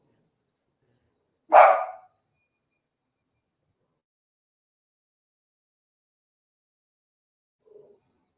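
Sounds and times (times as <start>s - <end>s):
dog barking: 1.5s - 2.1s.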